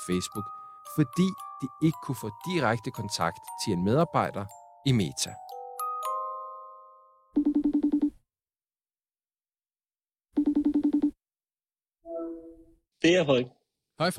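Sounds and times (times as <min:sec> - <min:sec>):
speech: 0:00.0 - 0:05.4, 0:13.0 - 0:14.1
phone call ringing tone: 0:06.5 - 0:08.2, 0:10.4 - 0:11.2.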